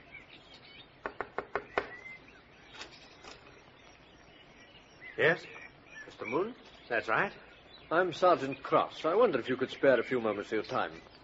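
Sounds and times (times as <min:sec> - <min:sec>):
faint birds chirping: 0:00.0 - 0:11.2
knocking on a wooden front door: 0:01.0 - 0:02.0
speech: 0:05.2 - 0:05.6, 0:06.2 - 0:11.1.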